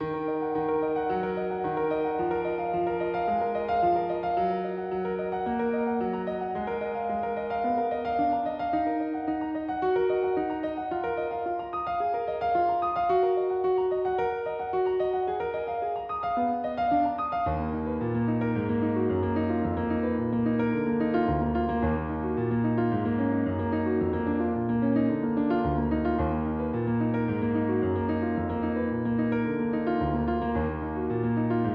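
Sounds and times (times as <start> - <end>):
piano loops: 0.0 - 31.7.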